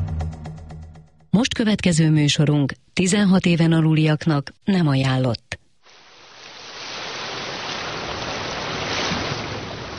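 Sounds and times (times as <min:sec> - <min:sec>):
speech: 0:01.4 - 0:05.5
sea waves rolling and hissing: 0:05.8 - 0:09.9.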